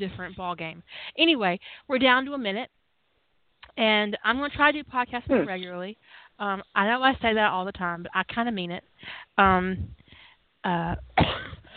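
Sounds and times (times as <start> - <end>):
speech: 0.0 - 2.8, 3.8 - 10.0, 10.6 - 11.7
person coughing: 5.3 - 5.6, 11.2 - 11.7
throat clearing: 5.3 - 5.6, 11.2 - 11.7.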